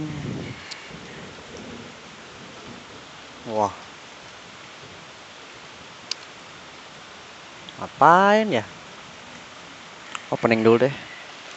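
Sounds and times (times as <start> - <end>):
low rumble of thunder: 0.0 - 4.0
steady rain hissing: 0.0 - 11.5
speech: 3.4 - 3.8, 7.8 - 8.8, 10.3 - 11.1.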